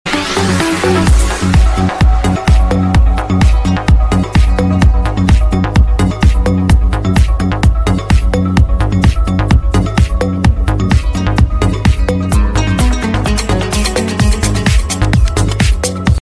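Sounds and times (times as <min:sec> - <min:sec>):
classy Arabic style music: 0:00.1 - 0:16.2.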